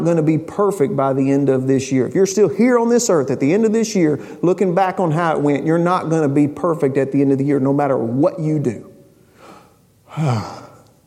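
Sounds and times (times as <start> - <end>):
speech: 0.0 - 8.9, 10.1 - 10.6
deep breath drawn in with a slight voiced edge: 9.2 - 10.9.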